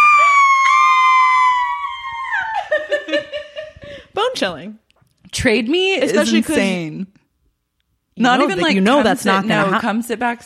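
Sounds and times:
woman screaming high-pitched: 0.0 - 2.9
speech: 4.4 - 4.8, 5.4 - 7.2, 8.2 - 10.4.

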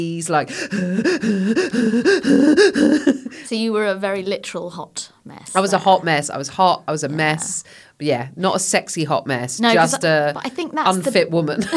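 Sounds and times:
speech: 0.0 - 11.7
voice imitating breathless panting after rushing onto a plane: 0.5 - 3.5.

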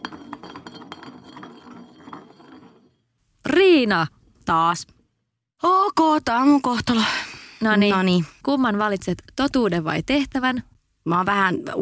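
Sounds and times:
glass bottle spinning on a surface in a game of spin the bottle: 0.0 - 3.2
speech: 3.5 - 5.0, 5.6 - 11.8.

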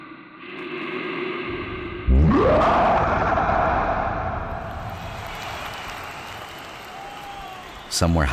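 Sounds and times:
steady low drone: 0.4 - 5.6
bear giving an almighty roar: 2.0 - 4.2
speech: 8.0 - 8.3.

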